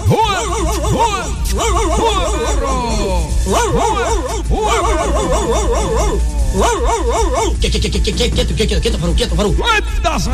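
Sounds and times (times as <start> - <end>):
several dogs barking and yelping excitedly: 0.0 - 7.6
speech: 5.6 - 10.3.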